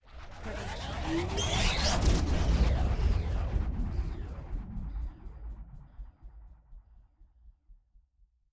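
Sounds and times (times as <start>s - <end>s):
laser-like riser: 0.1s - 5.7s.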